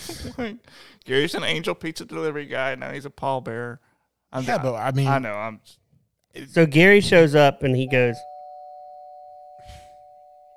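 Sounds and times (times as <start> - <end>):
speech: 0.1 - 8.3
doorbell ringing: 7.9 - 10.5.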